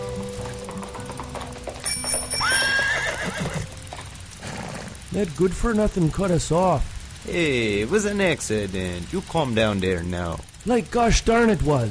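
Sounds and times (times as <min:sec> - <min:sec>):
horse hooves clip-clopping: 0:00.0 - 0:11.8
faint jingling bell: 0:01.7 - 0:03.9
horse whinnying: 0:02.3 - 0:03.8
speech: 0:05.2 - 0:11.8.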